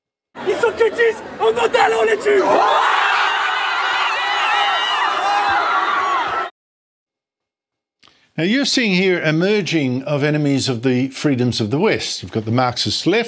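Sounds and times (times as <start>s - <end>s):
large crowd cheering and shouting: 0.4s - 6.5s
speech: 0.6s - 3.0s, 8.4s - 13.2s.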